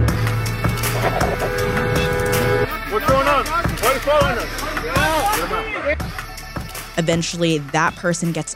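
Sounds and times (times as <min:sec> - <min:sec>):
car horn honking behind an ICE vehicle: 0:00.5 - 0:03.7
agitated voices shouting: 0:02.0 - 0:06.0
speech: 0:07.0 - 0:08.5.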